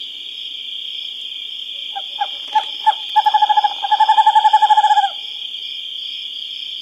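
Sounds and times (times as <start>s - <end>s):
western screech-owl singing in North America: 1.8s - 5.2s.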